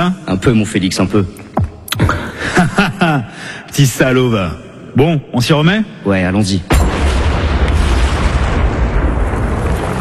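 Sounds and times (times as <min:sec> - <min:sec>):
speech: 0:00.0 - 0:01.4, 0:02.0 - 0:06.8
laughter: 0:02.0 - 0:03.5
mine explosion rumble: 0:06.7 - 0:09.9.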